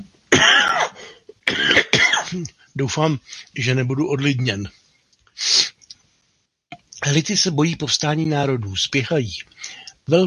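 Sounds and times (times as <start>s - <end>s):
harsh coughing: 0.3s - 2.5s
speech: 2.3s - 4.8s, 7.1s - 10.2s.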